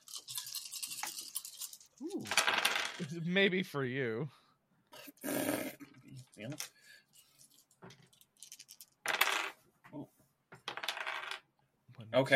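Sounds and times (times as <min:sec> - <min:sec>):
dice rattling on a hard surface: 0:00.0 - 0:03.1, 0:07.4 - 0:09.6, 0:10.6 - 0:11.4
speech: 0:03.0 - 0:04.4, 0:06.4 - 0:06.7, 0:12.2 - 0:12.3.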